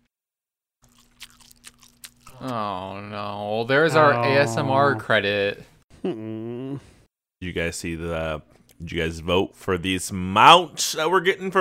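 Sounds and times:
person chewing Chinese food: 0.8s - 2.7s
speech: 2.4s - 11.5s.

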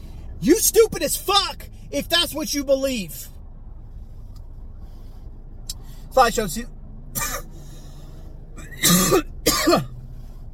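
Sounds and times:
speech: 0.4s - 3.3s, 6.1s - 6.8s, 8.8s - 9.9s
harsh heavy coughing: 7.2s - 7.5s, 8.6s - 10.0s.

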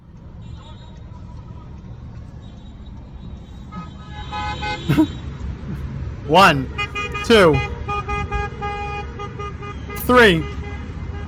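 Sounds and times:
traffic rumble: 0.0s - 11.2s
car horns honking in a car parade: 3.5s - 5.3s, 6.3s - 11.2s
speech: 4.8s - 5.2s, 6.3s - 7.7s, 10.1s - 10.5s.

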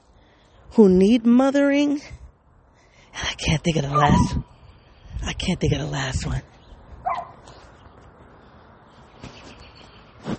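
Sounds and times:
steady outdoor hum: 0.0s - 10.3s
speech: 0.7s - 2.2s, 3.4s - 4.5s, 5.2s - 6.5s
stray dog barking outdoors: 4.0s - 4.4s, 7.0s - 7.4s.

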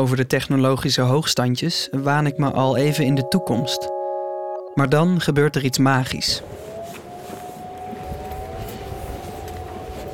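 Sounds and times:
speech: 0.0s - 4.0s, 4.8s - 6.6s
air raid sirens in Amsterdam, Almere and Muiden heard across water: 1.7s - 10.1s.

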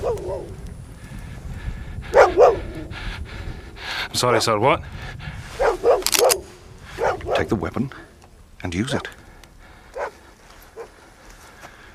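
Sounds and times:
dog barking: 0.0s - 0.6s, 2.1s - 2.7s, 5.6s - 6.4s, 7.0s - 7.5s, 9.9s - 10.2s, 10.8s - 11.0s
speech: 4.2s - 5.3s, 7.4s - 9.2s.

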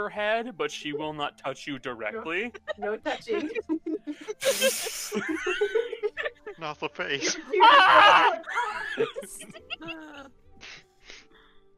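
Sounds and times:
speech: 0.0s - 5.9s, 6.6s - 10.1s
laughter: 2.2s - 10.3s
person screaming: 7.6s - 8.4s.

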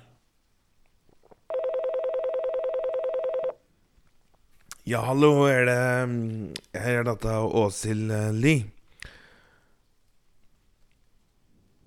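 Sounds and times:
telephone ringback tone while calling: 1.5s - 3.6s
speech: 4.9s - 8.8s.

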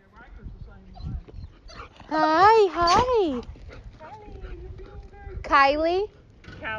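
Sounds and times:
golden retriever cadaver dog whining cries: 1.0s - 3.4s
speech: 2.1s - 3.5s, 5.5s - 6.7s.

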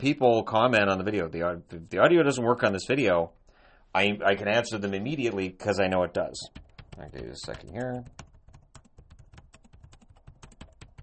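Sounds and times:
speech: 0.0s - 8.2s
hunt-and-peck typing on plastic computer keyboard: 6.4s - 11.0s.

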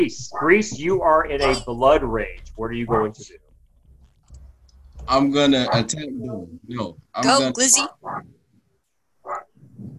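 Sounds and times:
speech: 0.0s - 3.5s, 5.0s - 8.4s
low rumbling murmur: 0.0s - 7.2s
dog barking: 5.6s - 6.0s, 9.2s - 9.5s.

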